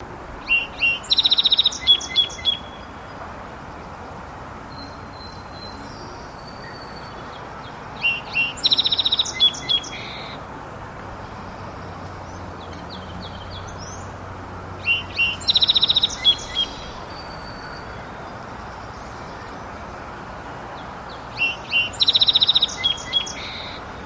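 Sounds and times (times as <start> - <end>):
song sparrow singing with repeated notes and buzzy trills: 0.0 - 24.0.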